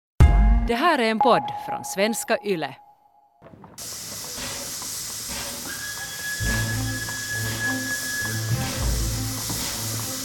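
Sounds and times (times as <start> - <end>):
speech: 0.7 - 2.8, 3.8 - 4.2
steam locomotive hissing at a station: 3.8 - 10.2
thin sustained whistle tone: 5.6 - 8.8.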